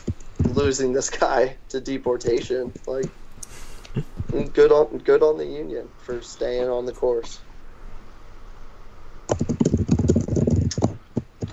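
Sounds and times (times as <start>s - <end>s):
speech: 0.6s - 3.2s, 3.9s - 7.5s
typing on a computer keyboard: 9.3s - 11.5s.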